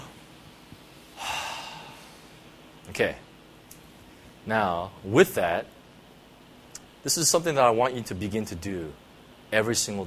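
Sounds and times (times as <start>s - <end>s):
group taking a deep breath: 1.2s - 2.4s
speech: 2.9s - 3.3s, 4.4s - 5.8s, 7.0s - 10.0s.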